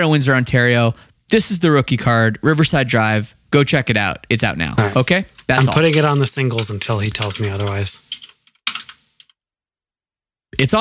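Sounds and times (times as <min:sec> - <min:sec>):
speech: 0:00.0 - 0:08.1, 0:10.5 - 0:10.7
typing on a computer keyboard: 0:06.5 - 0:09.3.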